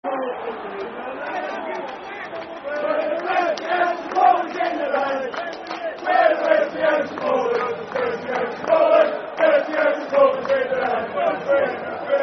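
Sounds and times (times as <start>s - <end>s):
football supporters chanting: 0.0s - 12.2s.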